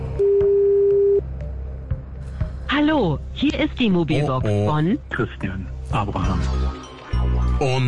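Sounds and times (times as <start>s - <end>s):
telephone ringback tone: 0.2s - 1.2s
speech: 2.8s - 6.8s, 7.6s - 7.8s.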